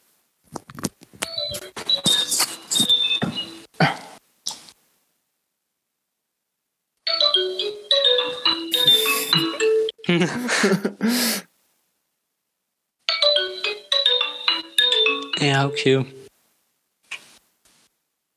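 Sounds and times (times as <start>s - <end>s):
mobile phone ringtone with bright electronic melody: 1.2s - 3.7s, 7.1s - 10.0s, 13.1s - 15.9s
person laughing: 8.8s - 11.4s
speech: 10.1s - 11.4s, 15.6s - 16.2s.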